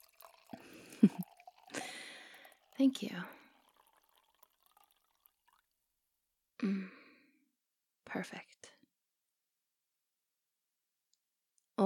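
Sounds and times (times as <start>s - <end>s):
wine pouring into a glass: 0.0s - 5.8s
speech: 1.0s - 1.2s, 2.8s - 3.4s, 6.6s - 7.0s, 8.1s - 8.6s.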